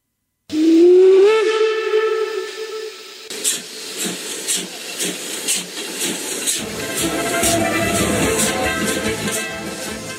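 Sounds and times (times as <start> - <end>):
whistle of a steam train to Irkutsk departing near Lake Baikal: 0.5 - 3.3, 6.5 - 10.1
bursts of hissing steam from a steam train: 0.5 - 10.1
rhythmic chuffing of a steam train: 3.0 - 10.1.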